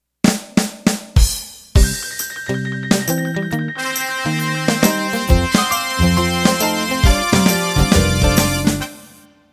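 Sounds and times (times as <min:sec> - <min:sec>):
1950s rock music intro: 0:01.8 - 0:09.2.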